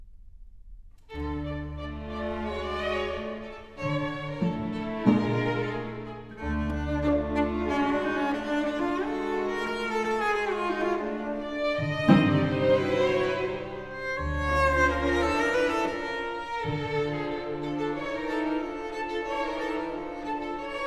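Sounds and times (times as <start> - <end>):
cello: 1.0 - 20.8
string orchestra: 1.0 - 20.8.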